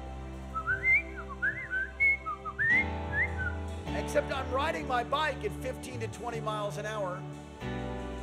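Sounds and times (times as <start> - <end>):
person whistling an imitation of a bird call: 0.6 - 3.6
speech: 4.1 - 7.8.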